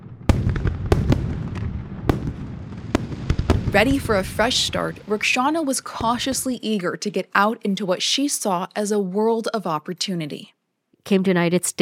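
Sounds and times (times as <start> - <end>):
fireworks exploding with bangs and crackling pops: 0.0 - 6.7
speech: 3.7 - 11.8.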